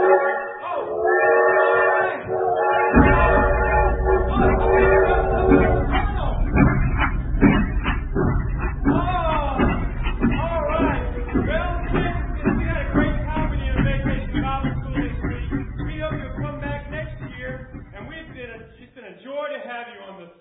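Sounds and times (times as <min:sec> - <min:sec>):
whistle-like tones: 0:00.0 - 0:06.7
clanking: 0:00.0 - 0:18.9
train engine chugging: 0:00.0 - 0:19.0.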